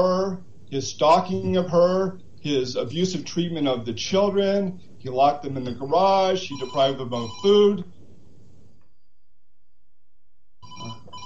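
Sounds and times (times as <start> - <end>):
speech: 0.0 - 8.0
electronic phone ringtone for an incoming call: 6.5 - 7.7, 10.6 - 11.2.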